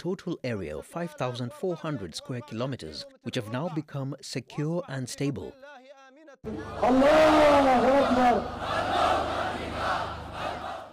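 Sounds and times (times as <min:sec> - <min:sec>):
speech: 0:00.0 - 0:05.8, 0:06.4 - 0:09.2
large crowd chanting in unison at a rally: 0:05.6 - 0:10.9
dense rowdy roar of many people: 0:06.5 - 0:10.9.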